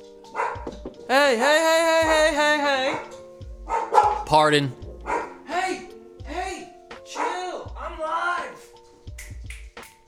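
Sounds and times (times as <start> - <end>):
dogs barking: 0.2 - 0.8, 2.8 - 6.0, 7.0 - 7.6
speech: 1.1 - 3.1, 4.3 - 4.8.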